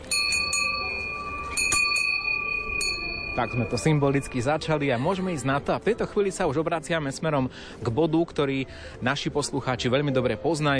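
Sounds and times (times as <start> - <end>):
small wish bell rung by pulling: 0.0 - 4.8
speech: 3.4 - 10.7.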